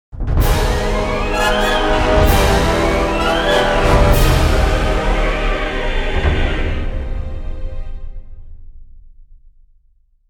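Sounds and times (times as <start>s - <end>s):
death music: 0.4s - 8.3s.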